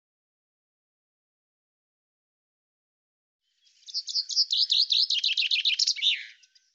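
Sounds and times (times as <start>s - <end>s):
common chaffinch song: 3.4s - 6.7s.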